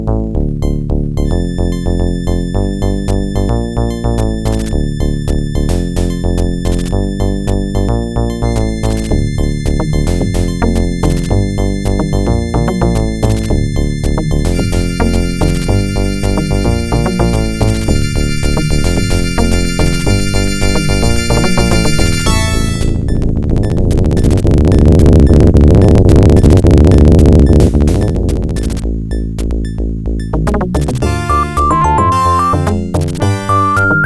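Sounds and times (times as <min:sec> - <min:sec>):
sound card intro music through speaker output: 0:00.2 - 0:34.0.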